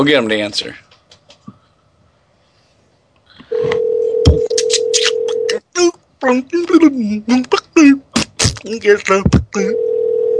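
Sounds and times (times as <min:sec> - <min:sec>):
speech: 0:00.0 - 0:00.8, 0:06.2 - 0:08.0, 0:08.6 - 0:09.9
telephone dial tone: 0:03.5 - 0:05.5, 0:09.7 - 0:10.3.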